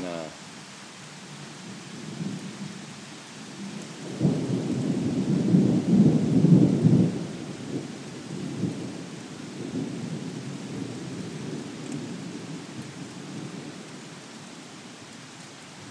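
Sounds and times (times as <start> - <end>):
steady rain in a thunderstorm: 0.0 - 15.8
rolling thunder in a thunderstorm: 3.4 - 14.0.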